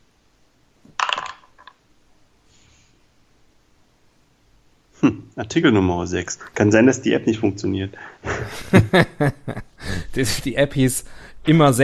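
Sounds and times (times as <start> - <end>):
dice tumbling onto a hard surface: 0.9 - 1.8
speech: 5.0 - 11.8
laughter: 8.2 - 10.5.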